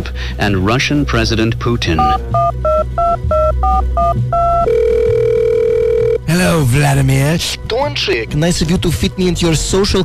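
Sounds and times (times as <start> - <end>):
speech: 0.4 - 5.5, 6.3 - 10.0
telephone ringing with electronic two-tone chirps: 2.0 - 6.3.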